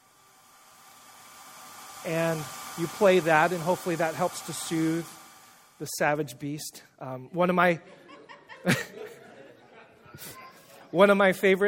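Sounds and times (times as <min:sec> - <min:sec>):
hairdryer blowing: 0:00.0 - 0:06.0
speech: 0:02.0 - 0:05.2, 0:05.8 - 0:08.0, 0:08.6 - 0:09.1, 0:10.2 - 0:11.6
laughter: 0:07.8 - 0:10.8.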